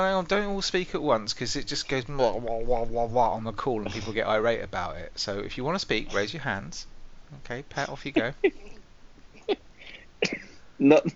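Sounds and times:
speech: 0:00.0 - 0:08.8, 0:09.5 - 0:11.1
short sharp coughs: 0:03.9 - 0:04.2, 0:09.4 - 0:11.1.

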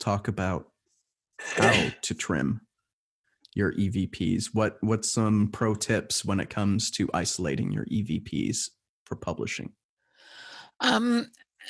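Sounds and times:
speech: 0:00.0 - 0:00.7, 0:01.6 - 0:02.7, 0:03.6 - 0:09.8, 0:10.8 - 0:11.6
person clearing throat with a voiced grunting rumble: 0:01.4 - 0:02.0.

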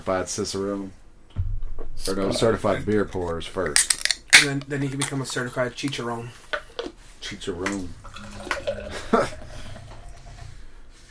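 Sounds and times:
speech: 0:00.0 - 0:01.0, 0:02.0 - 0:06.5, 0:07.2 - 0:08.3
low hum: 0:00.0 - 0:11.0
water splashing and swirling inside a beer glass being rinsed: 0:07.7 - 0:10.6.

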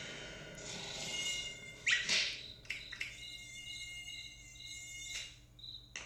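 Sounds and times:
cartoon mosquito whine: 0:00.8 - 0:05.4.

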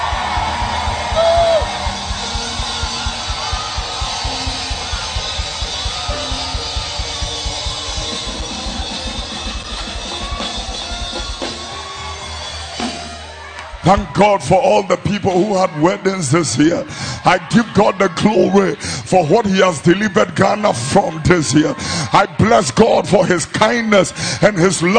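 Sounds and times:
pulsing low beat: 0:00.0 - 0:12.8
whoops: 0:00.0 - 0:13.8
large church audience screaming and shouting in gratitude to God: 0:00.0 - 0:24.9
speech: 0:13.9 - 0:24.9.

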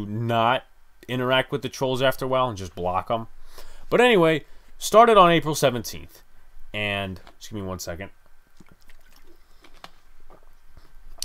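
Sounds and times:
speech: 0:00.0 - 0:08.2
water sloshing: 0:08.6 - 0:09.8.

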